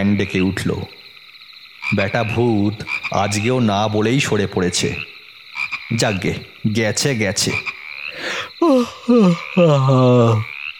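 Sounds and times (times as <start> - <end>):
speech: 0.0 - 1.0, 1.9 - 5.1, 5.9 - 10.5
person yawning: 8.2 - 10.5.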